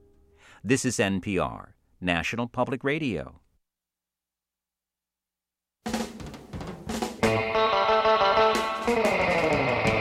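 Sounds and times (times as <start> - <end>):
speech: 0.6 - 3.4
surf guitar music from an early recording: 6.8 - 9.9.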